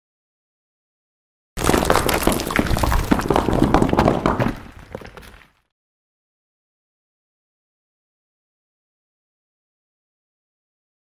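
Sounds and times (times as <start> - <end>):
stone falling: 1.6 - 5.7.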